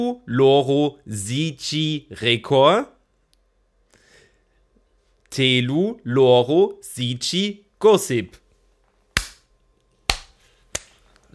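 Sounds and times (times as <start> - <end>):
speech: 0.0 - 3.0, 5.3 - 8.4
hand claps: 9.2 - 9.4, 10.1 - 11.0.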